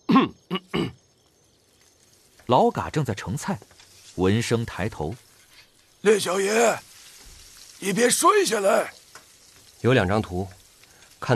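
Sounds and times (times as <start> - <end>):
person coughing in short dry bursts: 0.1 - 1.0
speech: 0.2 - 0.9, 2.5 - 5.2, 6.0 - 6.9, 7.8 - 9.0, 9.8 - 10.6.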